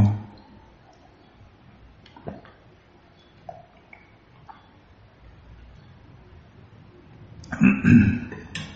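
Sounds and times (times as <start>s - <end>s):
low hum: 0.0s - 8.7s
person drinking water with soft clicks and gulps: 2.0s - 2.6s, 3.5s - 4.7s, 7.4s - 8.7s
speech: 7.6s - 8.3s.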